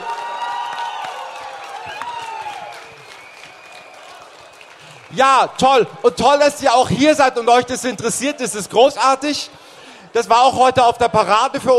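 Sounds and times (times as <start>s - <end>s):
voices cheering and whooping: 0.0s - 5.3s
crowd applauding: 0.0s - 8.5s
speech: 5.1s - 9.6s, 10.2s - 11.7s.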